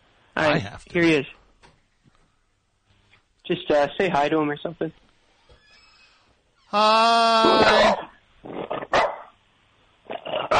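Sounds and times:
speech: 0:00.5 - 0:01.4, 0:03.5 - 0:05.0, 0:06.7 - 0:08.8
dog barking: 0:07.7 - 0:08.1, 0:08.9 - 0:09.4.

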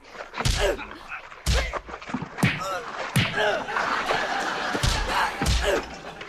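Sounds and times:
sharp slapping thuds of punches blocked with the back of a hand: 0:00.4 - 0:03.6, 0:04.7 - 0:05.9
laughter: 0:02.6 - 0:06.2.

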